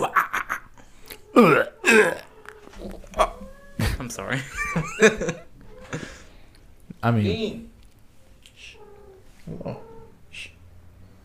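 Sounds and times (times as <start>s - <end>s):
laughter: 0.0s - 0.7s, 3.8s - 6.3s
cat meowing: 2.3s - 3.8s, 8.6s - 10.2s
speech: 4.2s - 5.5s, 7.0s - 7.7s.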